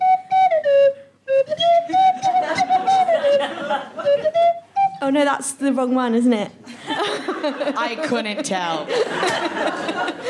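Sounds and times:
tin whistle playing a short bright melody: 0.0s - 5.0s
laughter: 2.1s - 4.3s, 6.7s - 10.2s
speech: 5.1s - 10.2s.

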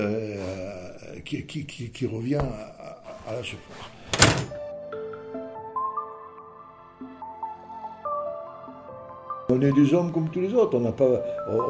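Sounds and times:
speech: 1.2s - 4.6s, 9.5s - 11.6s
door shutting with a heavy thunk: 4.0s - 4.6s.

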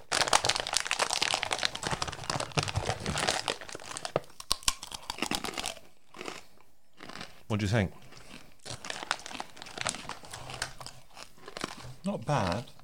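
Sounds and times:
plastic packet of pork scratchings crinkling: 0.0s - 5.7s, 8.7s - 12.7s
hard double-cooked pork scratching bitten and chewed: 0.0s - 12.8s
speech: 7.5s - 8.0s, 12.0s - 12.8s.

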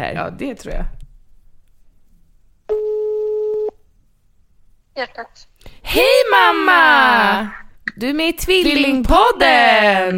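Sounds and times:
speech: 0.0s - 1.0s, 5.0s - 10.1s
telephone ringback tone while calling someone: 2.7s - 3.8s.

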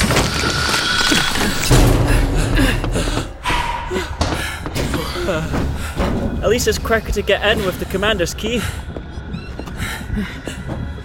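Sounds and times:
dense noisy background of movement and commotion: 0.2s - 8.9s
heavy door creaking and slamming: 1.4s - 6.6s
speech: 6.5s - 8.9s, 10.2s - 10.4s.

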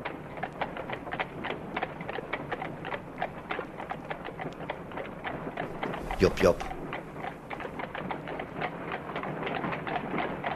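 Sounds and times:
horse hooves clip-clopping on a hard street: 0.0s - 10.5s
man calling out to a horse: 6.0s - 6.8s
speech: 6.2s - 6.8s.

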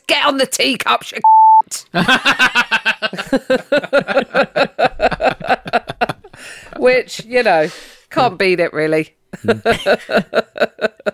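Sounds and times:
speech: 0.2s - 5.2s, 6.4s - 10.7s
censor bleep tone over swear word: 1.2s - 1.6s
laughter: 1.9s - 6.7s, 9.4s - 11.1s.

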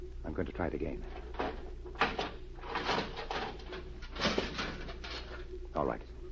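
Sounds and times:
speech: 0.3s - 1.2s, 5.8s - 6.1s
jimmy prying at a metal cabinet door: 1.3s - 5.3s.

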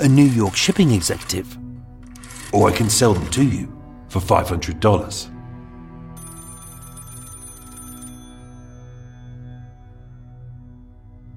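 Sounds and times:
speech: 0.0s - 1.6s, 2.5s - 5.3s
old-style telephone bell ringing with metallic jangle: 2.1s - 3.3s, 6.2s - 9.5s.

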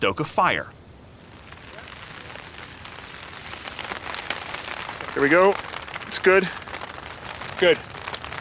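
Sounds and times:
speech: 0.0s - 0.8s, 5.2s - 6.6s, 7.6s - 7.9s
steady rain at an outdoor campsite: 0.1s - 8.4s.

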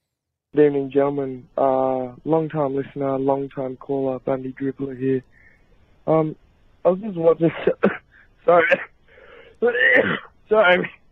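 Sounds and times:
faint hiss: 0.5s - 11.1s
speech: 0.6s - 5.3s, 6.1s - 8.9s, 9.6s - 11.0s
rough throaty coughing: 7.6s - 8.9s, 9.6s - 10.4s.

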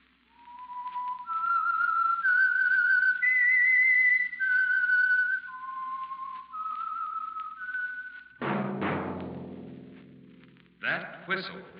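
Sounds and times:
lone whistler's slow eerie signature melody of a radio program: 0.3s - 8.4s.

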